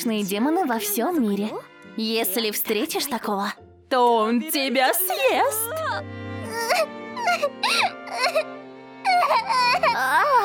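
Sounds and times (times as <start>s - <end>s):
speech: 0.0s - 8.5s
young child crying and wailing: 5.6s - 10.4s.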